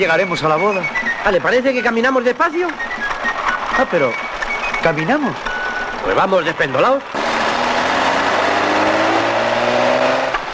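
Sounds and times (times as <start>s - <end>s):
speech: 0.0s - 3.0s, 3.8s - 4.2s, 4.8s - 7.2s
loud road noise from passing car: 0.0s - 10.5s
car engine revving past: 7.1s - 10.5s.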